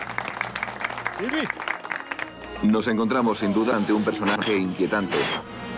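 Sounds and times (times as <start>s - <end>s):
small audience applauding in a radio studio: 0.0s - 2.9s
speech: 1.2s - 1.7s, 2.6s - 5.6s.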